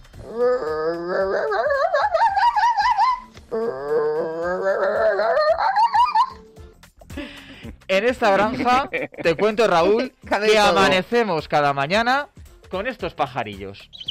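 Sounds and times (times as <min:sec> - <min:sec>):
angry fox wailing: 0:00.2 - 0:06.5
speech: 0:08.0 - 0:14.0.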